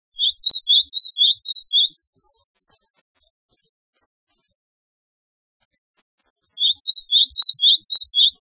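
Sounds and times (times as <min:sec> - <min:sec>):
Japanese tit calling: 0:00.2 - 0:01.9, 0:06.6 - 0:08.4.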